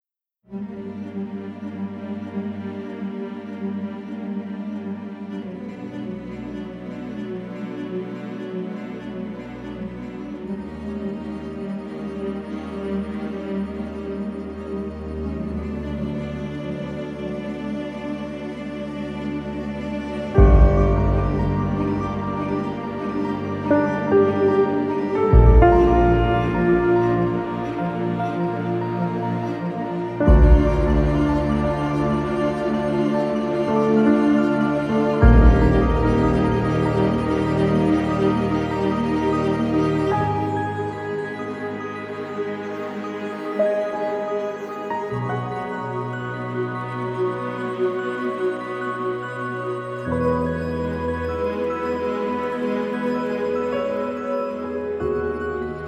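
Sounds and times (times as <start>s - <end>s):
piano: 0.4s - 55.8s
strings: 0.4s - 55.8s.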